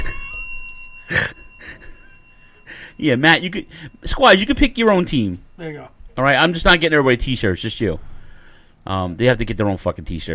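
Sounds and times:
bell ringing: 0:00.0 - 0:07.9
speech: 0:03.0 - 0:08.1, 0:08.8 - 0:10.3.

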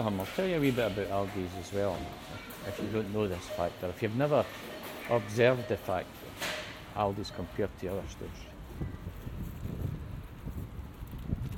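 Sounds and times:
speech: 0:00.0 - 0:06.2, 0:06.9 - 0:09.0
outdoor wind blowing across a microphone: 0:07.1 - 0:11.5.

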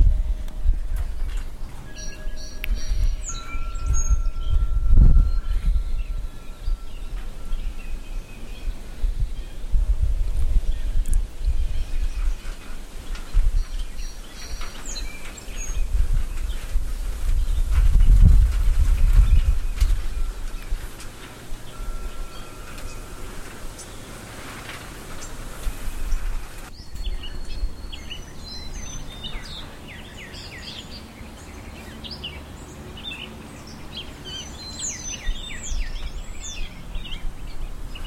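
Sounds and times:
birds calling: 0:00.0 - 0:38.0
low outdoor rumble: 0:00.0 - 0:38.0
maple seeds hitting a tin porch roof: 0:12.3 - 0:27.1.

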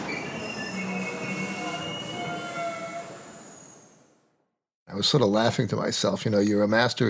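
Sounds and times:
subway train wheels squealing and screeching against the rails: 0:00.0 - 0:04.3
subway express train rumbling as it slows: 0:00.0 - 0:05.2
speech: 0:05.0 - 0:07.0.

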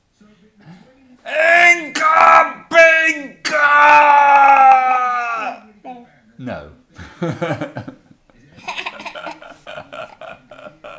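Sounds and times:
person screaming: 0:01.3 - 0:05.6
laughter: 0:07.0 - 0:10.9.

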